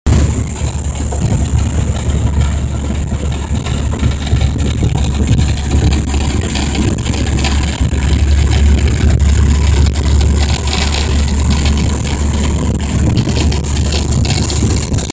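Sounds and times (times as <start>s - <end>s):
car noise over 50 to 60 mph: 0.0s - 15.1s.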